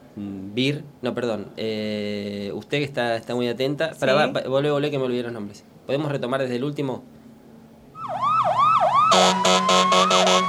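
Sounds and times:
speech: 0.2s - 7.1s
wailing siren in city traffic jam: 8.0s - 10.4s
car horns blaring in city traffic jam: 9.0s - 10.4s.

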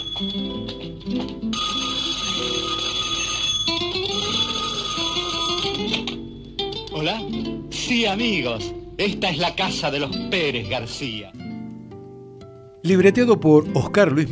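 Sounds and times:
telephone ringing with a bell-like tone: 0.0s - 6.9s
speech: 0.2s - 1.6s, 7.0s - 11.4s, 12.8s - 14.2s.

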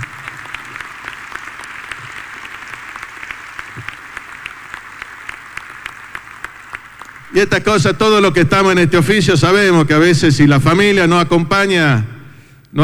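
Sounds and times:
crowd applauding: 0.0s - 8.7s
speech: 7.4s - 12.1s.

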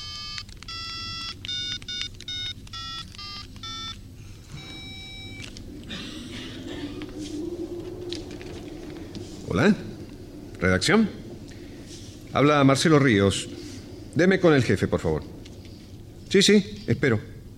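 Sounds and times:
mobile phone electronic keypad beeps: 0.0s - 5.5s
phone ringing tone on the line: 0.0s - 5.6s
low hum: 0.0s - 17.5s
speech: 9.5s - 9.9s, 10.6s - 11.2s, 12.4s - 13.6s, 14.2s - 15.4s, 16.3s - 17.3s.

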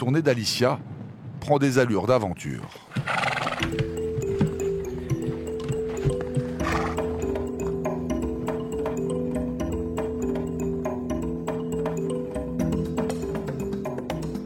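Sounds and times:
speech: 0.0s - 4.0s
horse whinny: 2.9s - 3.8s, 6.5s - 7.3s
horse's hooves clip-clopping on a mountain path: 2.9s - 10.5s, 12.6s - 13.7s
sustained musical backdrop: 3.2s - 14.4s.

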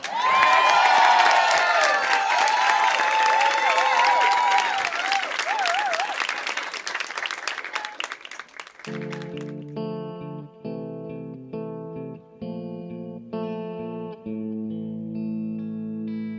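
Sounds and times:
high-pitched shouts: 0.0s - 6.2s
loud sustained applause from a large crowd: 0.0s - 9.7s.

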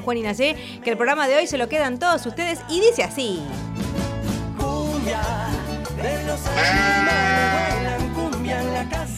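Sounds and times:
speech: 0.0s - 3.8s, 6.0s - 8.0s
steady musical backing with a pulsing bass line: 3.6s - 9.1s
sheep bleating: 6.5s - 8.0s.

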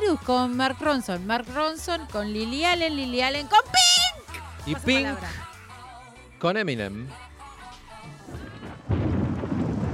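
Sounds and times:
speech: 0.1s - 4.0s, 4.6s - 5.5s, 6.4s - 7.3s
rolling thunder in a thunderstorm: 8.3s - 9.9s.

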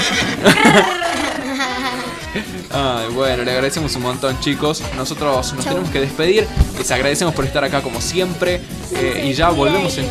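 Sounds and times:
voice imitating a horse neigh: 0.0s - 2.6s
laughter: 0.0s - 3.7s
speech: 0.4s - 1.0s, 2.4s - 10.0s.

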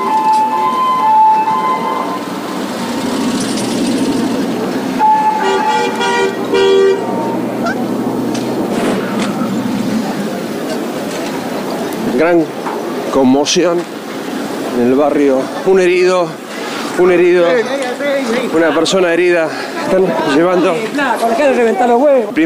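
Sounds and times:
horn-like blasts: 0.0s - 8.0s
sirens of many police vehicles wailing after a bomb explosion in Argentina: 0.0s - 12.1s
street traffic noise on Pasteur, Viamonte and Tucumán streets in Argentina: 0.0s - 22.4s
speech: 12.2s - 12.6s, 13.2s - 14.0s, 14.8s - 16.4s, 17.0s - 22.4s.

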